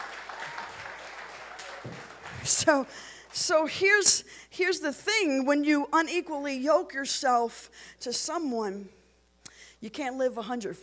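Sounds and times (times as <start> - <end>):
crowd applause: 0.0 - 3.4
speech: 1.8 - 9.0, 9.8 - 10.8.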